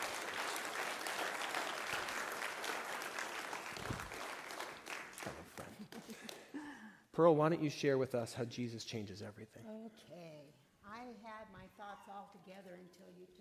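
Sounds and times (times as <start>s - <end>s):
crowd applauding: 0.0s - 6.6s
speech: 7.2s - 10.2s, 12.1s - 13.3s.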